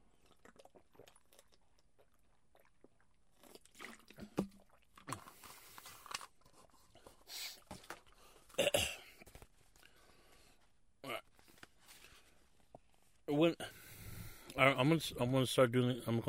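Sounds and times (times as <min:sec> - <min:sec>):
water being handled and sipped: 0:00.0 - 0:08.1
speech: 0:13.3 - 0:13.7, 0:14.6 - 0:16.2.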